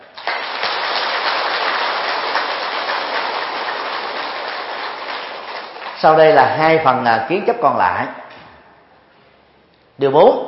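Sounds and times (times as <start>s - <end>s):
large audience of Buddhist followers applauding at a dharma talk: 0.0s - 6.2s
speech: 6.0s - 8.2s, 10.0s - 10.4s.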